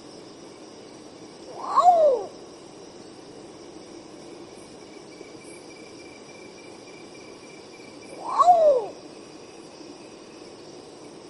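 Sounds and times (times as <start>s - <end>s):
thin continuous insect buzz: 0.0s - 11.2s
long-tailed potoo drawn-out plaintive call: 1.5s - 2.3s, 8.2s - 9.0s.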